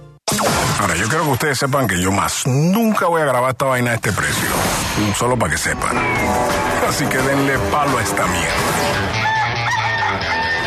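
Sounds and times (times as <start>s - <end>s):
speech: 0.8s - 9.3s
rooster crowing: 9.0s - 10.6s.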